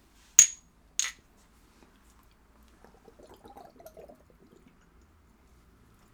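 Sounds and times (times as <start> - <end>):
clinking in a toast: 0.4 - 1.2
person sipping and swallowing a ginger shot: 2.7 - 5.0.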